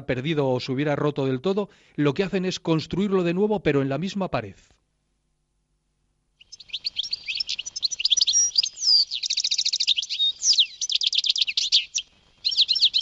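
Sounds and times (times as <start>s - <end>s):
speech: 0.0s - 4.8s
European goldfinch singing: 6.4s - 12.9s.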